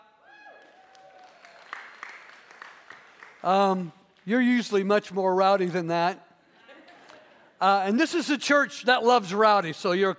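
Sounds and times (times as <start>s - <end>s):
church audience applause: 0.6s - 3.8s
speech: 3.4s - 6.3s, 7.6s - 10.1s.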